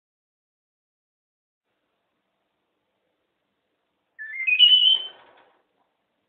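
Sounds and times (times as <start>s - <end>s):
pet red-fronted parrot whistling: 4.2s - 5.2s.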